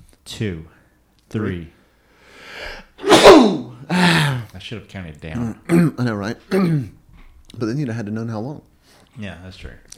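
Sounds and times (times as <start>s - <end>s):
speech: 0.3s - 1.8s, 3.4s - 9.9s
person sneezing: 2.7s - 4.5s.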